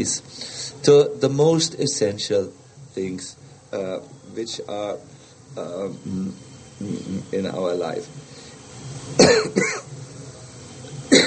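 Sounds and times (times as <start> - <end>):
speech: 0.0 - 8.4
dry coughs: 9.2 - 9.9.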